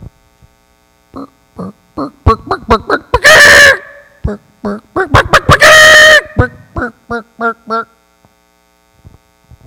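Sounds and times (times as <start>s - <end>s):
faint hum: 0.0s - 9.6s
mother hen clucking and squawking: 1.2s - 7.8s.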